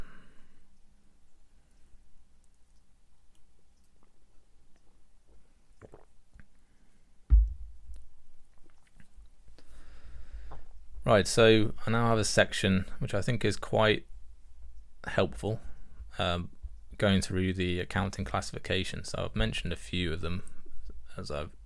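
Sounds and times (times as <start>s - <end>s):
mouth and swallowing noises: 5.8s - 6.5s, 7.4s - 9.3s
person sipping a drink: 5.8s - 6.5s
soft dull thump: 7.3s - 8.0s
speech: 11.1s - 14.1s, 15.0s - 20.5s, 21.2s - 21.6s.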